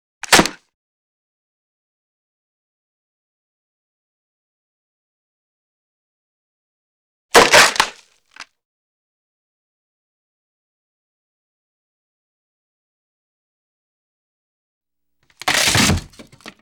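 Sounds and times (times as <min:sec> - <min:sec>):
medium wood snap: 0:00.2 - 0:00.6, 0:15.4 - 0:16.6.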